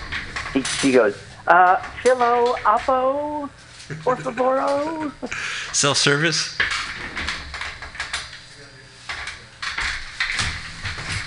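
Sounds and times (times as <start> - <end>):
rolling office chair trundling across a studio floor: 0.0 - 6.0, 6.6 - 8.4, 9.0 - 11.2
speech: 0.5 - 6.6
laughter: 3.9 - 5.6.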